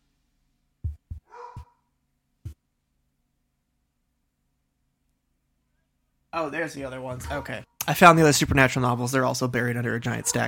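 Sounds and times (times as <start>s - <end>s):
dog barking: 1.2s - 1.9s, 7.2s - 7.6s, 10.1s - 10.4s
dog yelping: 1.3s - 1.8s, 7.2s - 7.6s
speech: 6.4s - 10.4s.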